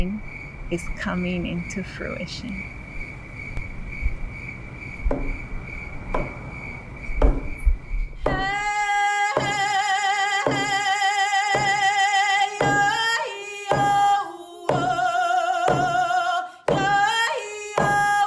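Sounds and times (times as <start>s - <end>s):
crickets chirping at night: 0.0s - 18.2s
speech: 0.7s - 2.8s
soft knocks: 5.0s - 5.4s, 6.1s - 6.4s, 7.2s - 8.5s.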